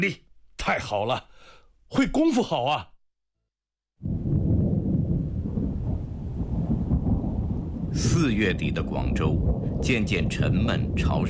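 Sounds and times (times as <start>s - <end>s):
speech: 0.0s - 2.9s, 7.9s - 11.2s
distant rolling thunder before a rainstorm: 4.0s - 11.2s.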